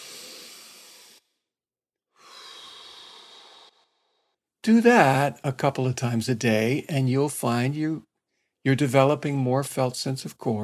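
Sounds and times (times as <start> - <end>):
breath drawn in through the nose: 0.0 - 1.2, 2.2 - 4.4
long airy exhale through pursed lips: 0.0 - 1.3, 2.2 - 4.4
speech: 4.6 - 10.6.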